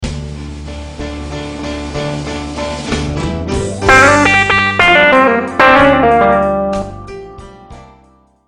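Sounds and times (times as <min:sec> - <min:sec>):
guitar lick: 0:03.8 - 0:07.4.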